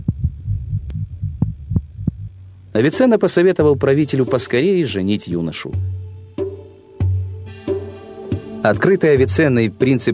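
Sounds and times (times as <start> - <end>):
rapid heartbeat: 0.0 - 2.4
faint hum: 0.0 - 10.1
speech: 2.8 - 6.1, 8.6 - 10.1.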